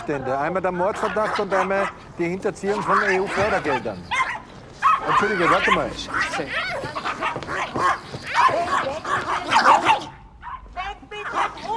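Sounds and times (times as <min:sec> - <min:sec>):
speech: 0:00.0 - 0:04.2, 0:05.0 - 0:06.9
dog barking rapidly and excitedly: 0:00.0 - 0:11.7.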